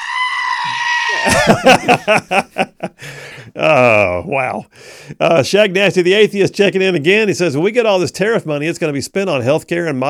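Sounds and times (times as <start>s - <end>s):
panicking goat bleating: 0.0s - 1.4s
laughter: 1.1s - 3.0s
speech: 1.1s - 10.0s.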